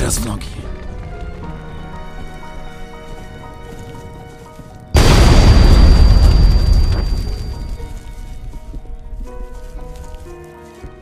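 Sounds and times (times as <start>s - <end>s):
crackling debris: 0.6s - 10.6s
explosives blowing up a radar station: 5.0s - 8.2s.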